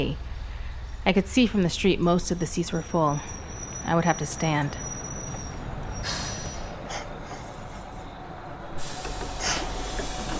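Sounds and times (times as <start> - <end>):
speech: 0.0 - 0.3, 1.0 - 4.9
city bus engine rumbling: 0.0 - 10.3
bus air brakes hissing: 2.9 - 10.3.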